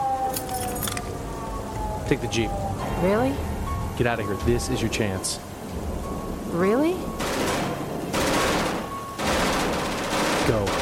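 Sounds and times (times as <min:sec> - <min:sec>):
steady low rumbling background: 0:00.0 - 0:10.8
keys jangling as handed over: 0:00.3 - 0:01.1
speech: 0:02.1 - 0:05.5, 0:06.5 - 0:07.2, 0:10.5 - 0:10.8.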